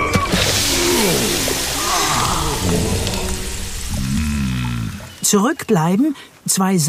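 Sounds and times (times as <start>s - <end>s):
quick heavy footsteps splashing into water: 0.1s - 4.2s
speech: 5.3s - 6.8s.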